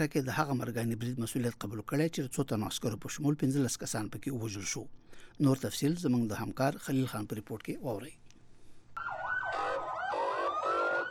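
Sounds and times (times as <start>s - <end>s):
speech: 0.0s - 8.2s
wailing sirens of ambulances and fire engines after a suicide bombing in Quetta: 9.0s - 11.0s.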